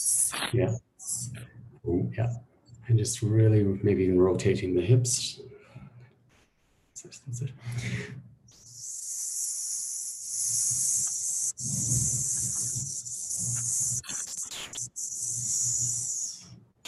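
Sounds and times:
speech: 0.0 - 5.6, 7.0 - 8.2
hissing sss sound made by a voice with the tip of the tongue: 8.6 - 16.5.

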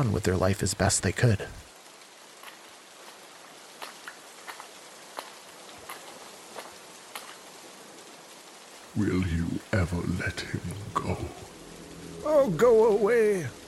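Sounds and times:
speech: 0.0 - 1.6, 9.0 - 11.5, 12.2 - 13.6
steady rain: 0.0 - 13.6.

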